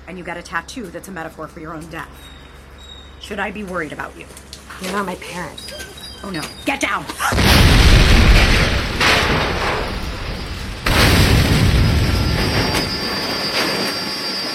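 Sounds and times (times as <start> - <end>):
speech: 0.1 - 2.4, 3.2 - 7.6
loud explosion: 7.3 - 13.3.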